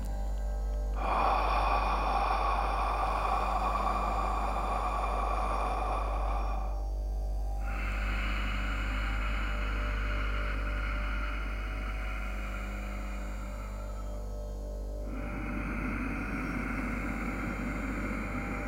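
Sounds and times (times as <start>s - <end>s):
faint low hum: 0.0s - 18.6s
long breathy inhale through the nose: 0.0s - 18.6s
steady exhale through the mouth: 1.0s - 18.6s.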